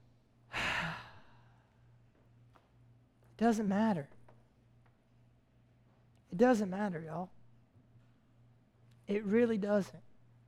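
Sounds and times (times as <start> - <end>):
deep breath released as a soft breathy sigh: 0.5 - 1.7
speech: 3.4 - 4.2, 6.4 - 7.4, 9.1 - 10.1.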